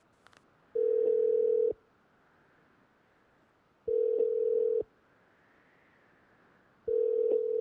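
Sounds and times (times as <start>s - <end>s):
ringback tone of an outgoing telephone call: 0.8s - 1.8s, 3.9s - 4.8s, 6.9s - 7.5s.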